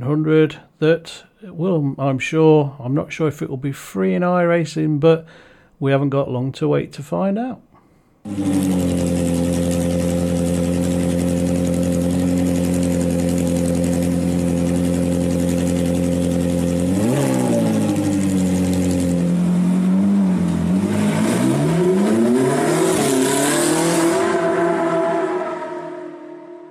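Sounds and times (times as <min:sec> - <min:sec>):
speech: 0:00.0 - 0:09.6
Formula Ford race car engine idling and revving: 0:08.3 - 0:26.7.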